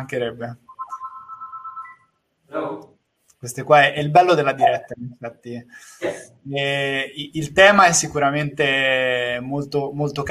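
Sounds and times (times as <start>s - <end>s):
speech: 0.0s - 0.6s, 3.4s - 10.2s
telephone ringing with a steady electronic tone: 0.7s - 2.2s.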